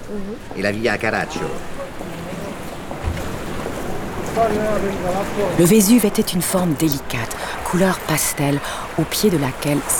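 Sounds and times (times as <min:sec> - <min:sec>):
rough agitated sea waves off Naples: 0:00.0 - 0:09.9
speech: 0:00.1 - 0:02.2, 0:04.4 - 0:09.9
low thump: 0:02.9 - 0:04.3.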